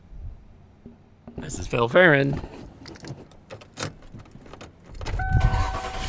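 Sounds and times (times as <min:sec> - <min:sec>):
speech: 0:01.4 - 0:02.6
clicks and light rattles inside a car: 0:02.4 - 0:05.2.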